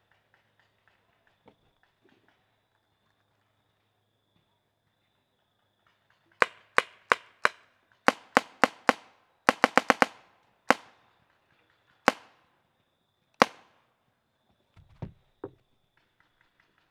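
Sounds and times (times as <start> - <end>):
guns: 8.1 - 11.0, 12.1 - 12.4, 13.4 - 13.8.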